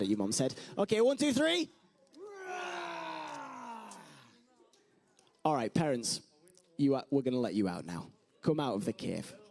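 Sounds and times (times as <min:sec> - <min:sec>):
speech: 0:00.0 - 0:01.8, 0:05.4 - 0:09.4
group of voices imitating a lion roar: 0:02.2 - 0:04.2.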